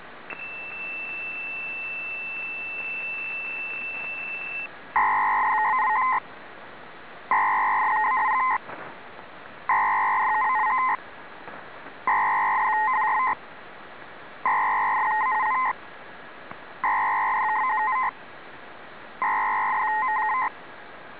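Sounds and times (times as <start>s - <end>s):
Spanish Navy ALE radio data signal: 0.3s - 6.2s, 7.3s - 8.6s, 9.7s - 11.0s, 12.1s - 13.4s, 14.5s - 15.8s, 16.8s - 18.2s, 19.2s - 20.5s.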